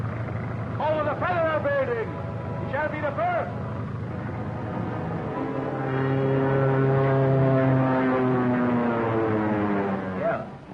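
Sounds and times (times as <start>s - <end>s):
small two-seater propeller plane engine droning: 0.0s - 10.7s
speech: 1.2s - 3.6s.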